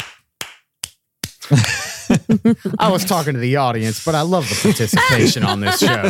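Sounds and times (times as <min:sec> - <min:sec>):
hands clapping: 0:00.0 - 0:02.0
laughter: 0:01.4 - 0:06.0
speech: 0:01.5 - 0:06.0.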